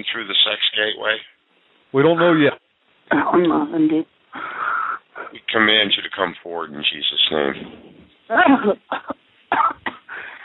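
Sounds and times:
speech: 0:00.0 - 0:04.6, 0:05.3 - 0:09.8
person coughing: 0:08.9 - 0:10.1.

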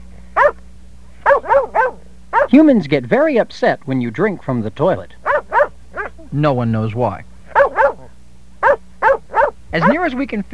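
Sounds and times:
faint low hum: 0:00.0 - 0:10.5
dog barking: 0:00.4 - 0:00.6, 0:01.2 - 0:02.6, 0:05.2 - 0:06.2, 0:07.5 - 0:10.1
speech: 0:02.5 - 0:05.2, 0:06.3 - 0:07.3, 0:09.7 - 0:10.5.

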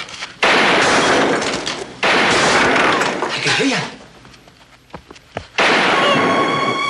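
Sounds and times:
gunshots: 0:00.4 - 0:03.5, 0:05.6 - 0:06.7.

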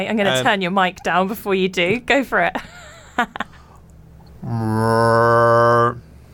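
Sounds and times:
speech: 0:00.0 - 0:03.5, 0:04.4 - 0:06.0
person imitating a cow mooing: 0:04.4 - 0:06.0.

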